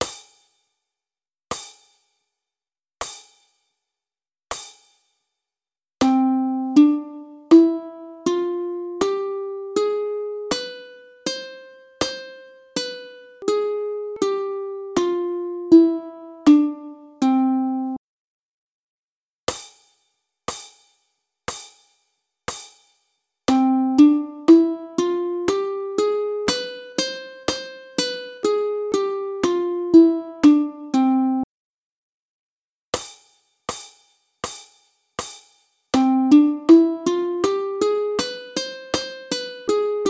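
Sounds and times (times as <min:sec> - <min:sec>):
ukulele harmonics in C major: 0:06.0 - 0:18.0, 0:23.5 - 0:31.4, 0:36.0 - 0:40.0.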